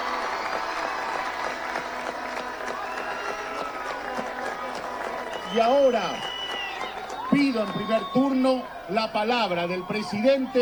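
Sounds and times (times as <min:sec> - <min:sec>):
large crowd applauding for the national team: 0:00.0 - 0:10.6
speech: 0:05.5 - 0:06.3, 0:07.3 - 0:10.6.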